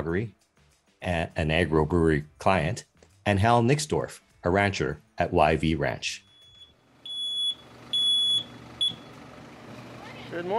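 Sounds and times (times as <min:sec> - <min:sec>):
speech: 0:00.0 - 0:00.4, 0:01.0 - 0:06.2, 0:10.3 - 0:10.5
truck backup beeper: 0:06.2 - 0:09.3.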